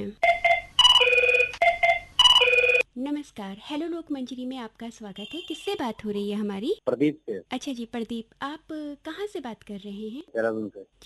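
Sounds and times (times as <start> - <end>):
electronic telephone ringing as a call comes in: 0.2 - 2.8
speech: 3.4 - 11.0.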